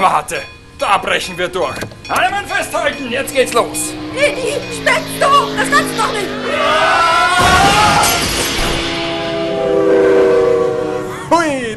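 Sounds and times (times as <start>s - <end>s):
speech: 0.0s - 8.2s, 11.3s - 11.7s
train rushing and rumbling past a gated level crossing: 0.0s - 11.4s
train horn multi-tone blast at a gated level crossing: 2.2s - 11.4s.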